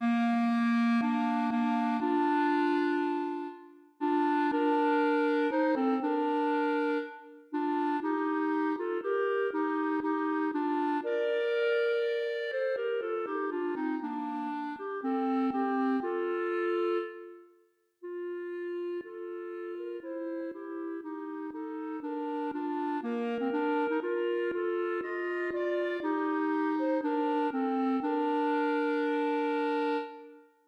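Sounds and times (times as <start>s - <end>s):
clarinet duet: 0.0s - 30.6s.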